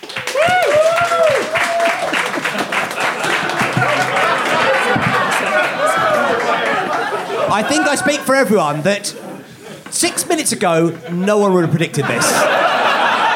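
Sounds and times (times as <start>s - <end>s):
studio audience whooping: 0.0s - 8.4s
live studio audience applauding: 0.0s - 9.4s
excited audience chatter: 0.4s - 13.3s
laughter: 0.9s - 13.3s
speech: 7.6s - 9.3s, 10.0s - 12.6s.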